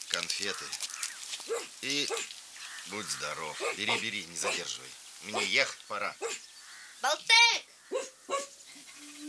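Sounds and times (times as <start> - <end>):
speech: 0.1 - 8.5
dog yelping: 1.5 - 2.3, 3.5 - 4.7, 6.2 - 6.4, 7.9 - 8.6.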